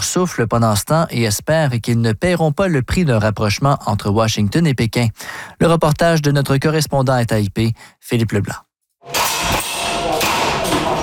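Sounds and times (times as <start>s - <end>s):
speech: 0.0s - 9.2s
air guns fired during target practice in a basement: 9.1s - 11.0s.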